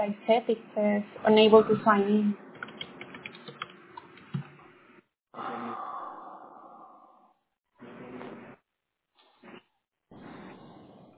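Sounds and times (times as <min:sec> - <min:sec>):
speech: 0:00.0 - 0:02.4
computer keyboard typing: 0:02.5 - 0:04.6
long breathy exhale: 0:05.4 - 0:07.4.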